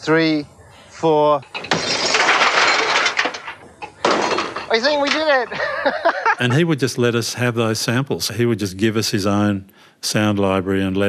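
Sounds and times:
speech: 0:00.0 - 0:01.8, 0:04.7 - 0:11.0
television screen smashed in a junkyard: 0:01.5 - 0:05.5
laughter: 0:05.4 - 0:07.0.

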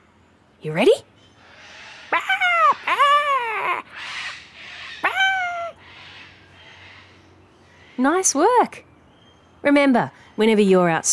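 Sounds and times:
speech: 0:00.6 - 0:01.1, 0:08.0 - 0:08.9, 0:09.6 - 0:11.1
human voice imitating sulphur-crested cockatoo screech: 0:02.1 - 0:03.9, 0:05.0 - 0:05.8.

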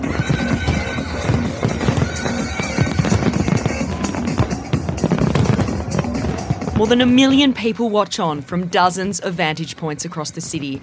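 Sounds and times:
fireworks exploding in a dense barrage: 0:00.0 - 0:07.8
faint crowd noise: 0:00.0 - 0:10.8
speech: 0:06.8 - 0:10.8.

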